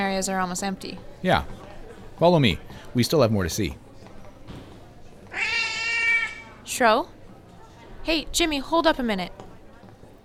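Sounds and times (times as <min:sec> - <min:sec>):
speech: 0:00.0 - 0:01.6, 0:02.2 - 0:03.8, 0:06.7 - 0:07.2, 0:08.0 - 0:09.4
cat meowing: 0:05.3 - 0:06.6.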